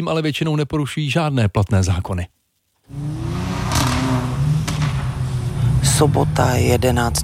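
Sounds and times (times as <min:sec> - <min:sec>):
speech: 0:00.0 - 0:03.1, 0:06.0 - 0:07.2
sports car engine revving loudly: 0:02.9 - 0:07.2.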